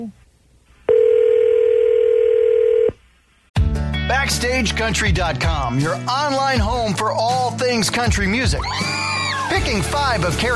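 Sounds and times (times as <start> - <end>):
speech: 0.0 - 0.2, 4.3 - 10.5
steady electronic tone of a call placed to a cell phone: 0.9 - 3.0.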